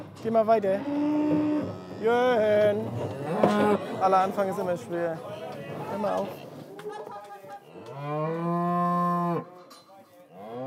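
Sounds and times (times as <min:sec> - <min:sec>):
speech: 0:00.2 - 0:06.4, 0:08.0 - 0:08.5
cow mooing for its calf during a cattle drive: 0:00.8 - 0:02.5, 0:03.1 - 0:03.9, 0:07.8 - 0:09.5, 0:10.4 - 0:10.6.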